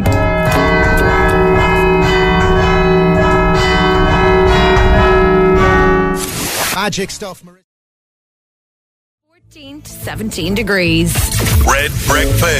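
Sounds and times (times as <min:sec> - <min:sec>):
church bells ringing a pop tune: 0:00.0 - 0:06.3
speech: 0:06.9 - 0:07.6, 0:09.5 - 0:12.5.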